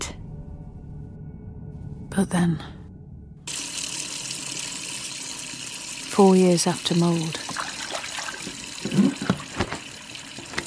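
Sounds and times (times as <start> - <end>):
speech: 2.1 - 2.8, 6.2 - 7.5
kitchen tap water running while washing up dishes: 3.5 - 10.6
dishes splashing and knocking while washed up: 7.5 - 10.6.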